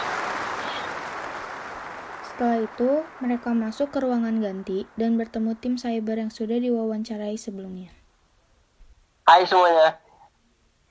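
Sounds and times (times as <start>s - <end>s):
crowd applause: 0.0s - 7.0s
speech: 2.4s - 8.0s, 9.3s - 10.0s.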